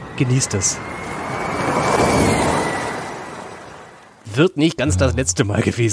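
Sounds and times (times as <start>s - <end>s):
Formula E Gen 2 electric race car passing by: 0.0s - 4.2s
speech: 0.2s - 1.3s, 4.4s - 5.9s.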